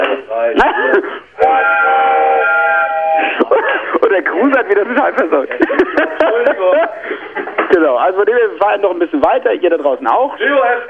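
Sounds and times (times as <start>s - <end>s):
laughter: 0.4s - 7.9s
voices in chorus imitating a train horn: 1.4s - 3.4s
speech: 4.4s - 5.9s, 8.0s - 10.8s.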